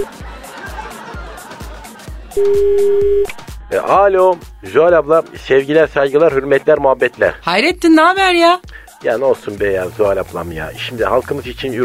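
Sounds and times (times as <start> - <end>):
people laughing: 0.0 - 3.2
rhythmic thumping music bed: 0.0 - 11.8
phone call ringback tone: 2.4 - 3.4
speech: 2.4 - 11.8.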